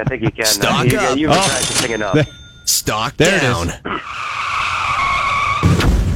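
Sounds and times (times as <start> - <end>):
speech: 0.0 - 4.3
long steady car tire screech: 3.9 - 6.0.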